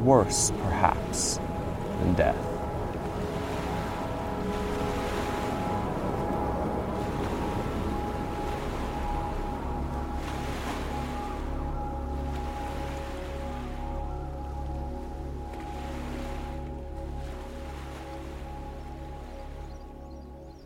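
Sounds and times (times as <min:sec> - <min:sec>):
speech: 0:00.0 - 0:01.4, 0:02.0 - 0:02.5
whirlpool of dark water sucking down: 0:00.0 - 0:19.8
low droning hum: 0:00.0 - 0:20.6.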